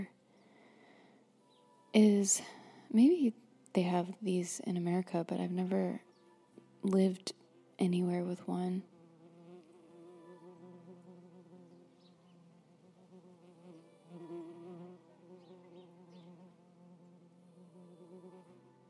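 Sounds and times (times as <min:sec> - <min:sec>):
speech: 0:02.0 - 0:06.1, 0:06.8 - 0:08.9
bee buzzing around a microphone at an open window: 0:08.8 - 0:18.8.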